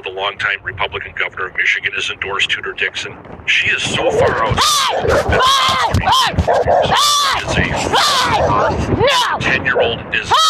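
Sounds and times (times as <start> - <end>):
speech: 0.1 - 10.4
raised shouting human voices: 4.1 - 9.4, 10.3 - 10.4
dog barking: 4.2 - 7.4, 8.0 - 8.8, 9.7 - 10.0.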